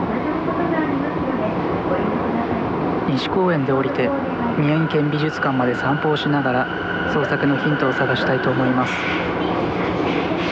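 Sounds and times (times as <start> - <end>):
moving subway car interior rumble: 0.0 - 10.5
speech: 3.2 - 9.3.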